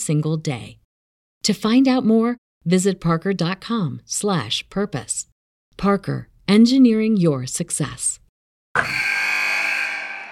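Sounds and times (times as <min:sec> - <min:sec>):
speech: 0:00.0 - 0:00.8, 0:01.4 - 0:08.2
game-ending buzzer blaring: 0:08.8 - 0:10.3.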